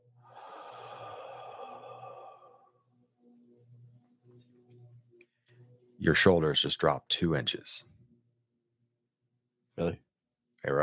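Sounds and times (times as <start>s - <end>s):
faint low pulsing tones: 0.0s - 8.4s
deep breath in and out: 0.1s - 3.0s
speech: 6.0s - 7.9s.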